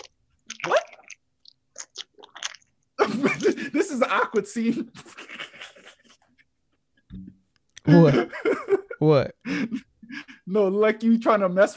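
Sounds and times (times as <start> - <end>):
crunchy chewing of food: 0.0 - 2.7
speech: 4.0 - 5.1, 7.9 - 9.9, 10.5 - 11.7.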